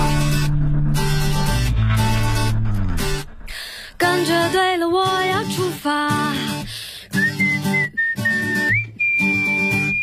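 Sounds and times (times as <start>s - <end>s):
bouncy pop song with steady beats and backing instruments: 0.0s - 10.0s
light cheerful whistled melody in a pop song: 7.1s - 10.0s.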